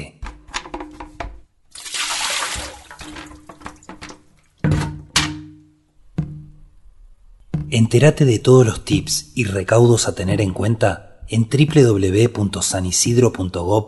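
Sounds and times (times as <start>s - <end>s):
hollow thunks of containers being set down: 0.1s - 1.5s, 2.5s - 6.8s, 7.4s - 7.8s
water pouring out of tipped-over containers: 1.7s - 4.7s
speech: 7.7s - 13.8s.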